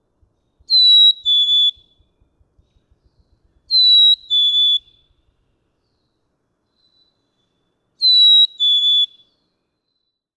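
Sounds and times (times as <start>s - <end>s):
male Black-capped Chickadee singing two-note whistled song in Michigan: 0.6s - 2.1s, 2.8s - 5.3s, 6.7s - 10.3s.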